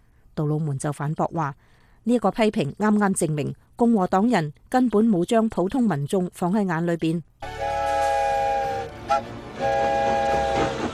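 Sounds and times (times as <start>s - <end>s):
speech: 0.4s - 7.7s
steam train whistle blasting: 7.4s - 10.9s.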